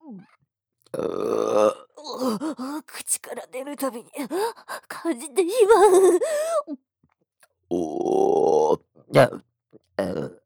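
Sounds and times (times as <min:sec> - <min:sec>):
speech: 0:00.9 - 0:01.4, 0:03.3 - 0:06.4, 0:09.2 - 0:09.4
voiced gasp or groan: 0:02.0 - 0:02.9, 0:04.1 - 0:05.0, 0:06.1 - 0:06.7
loud rumbling burp: 0:07.7 - 0:09.4, 0:10.0 - 0:10.4.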